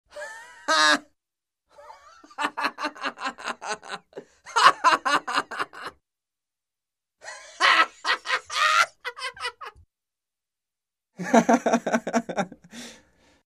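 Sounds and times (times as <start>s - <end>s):
man laughing: 0.1s - 1.1s, 1.8s - 6.0s, 7.2s - 9.8s, 11.2s - 12.8s.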